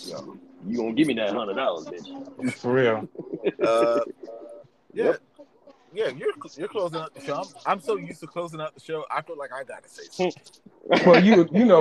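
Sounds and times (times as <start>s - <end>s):
speech: 0.0s - 5.3s, 5.9s - 11.7s
faint murmuring voices: 0.0s - 11.7s
laughter: 1.1s - 4.6s, 6.0s - 8.4s, 10.8s - 11.7s
bird cooing: 3.0s - 4.6s.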